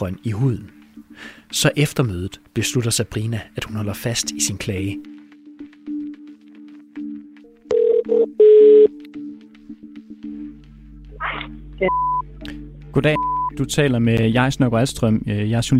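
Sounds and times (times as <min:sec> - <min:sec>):
speech: 0:00.0 - 0:05.1, 0:11.8 - 0:12.2, 0:13.0 - 0:15.7
phone keypad dialing tones: 0:07.7 - 0:08.9.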